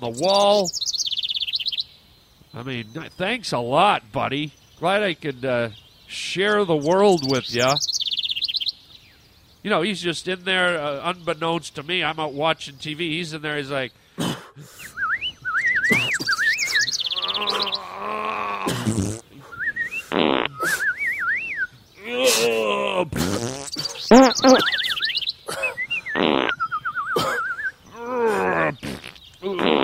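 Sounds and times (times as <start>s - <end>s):
speech: 0.0s - 0.9s, 2.6s - 7.9s, 9.6s - 14.8s
person imitating bird chirps and whistles: 0.0s - 1.7s, 6.1s - 8.4s, 14.2s - 29.8s
person imitating a bird with fart noises: 15.9s - 16.4s, 17.2s - 20.9s, 22.0s - 24.7s, 25.5s - 29.8s.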